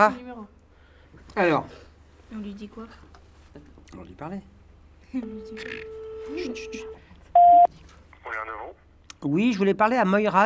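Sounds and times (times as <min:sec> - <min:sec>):
speech: 0:00.0 - 0:00.5, 0:01.4 - 0:04.5, 0:05.1 - 0:10.4
voices murmuring: 0:00.0 - 0:09.0
keypad beep as a telephone number is dialed: 0:05.2 - 0:07.7
phone dial tone: 0:05.2 - 0:07.7.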